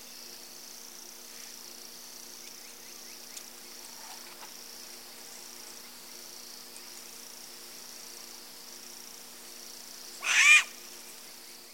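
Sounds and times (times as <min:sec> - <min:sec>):
faint steady hum: 0:00.0 - 0:11.7
striped owl harsh rasping squeal in the eastern lowlands of South America: 0:10.2 - 0:10.7.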